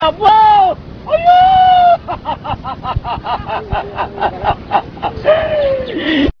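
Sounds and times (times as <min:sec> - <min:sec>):
wail: 0:01.1 - 0:02.2, 0:03.2 - 0:06.3
laughter: 0:01.8 - 0:06.3.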